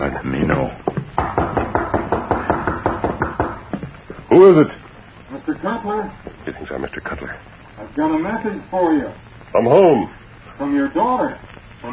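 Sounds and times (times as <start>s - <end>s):
knocking on the wooden rear door of a house: 0.8s - 3.9s
speech: 4.4s - 4.8s, 8.0s - 11.4s.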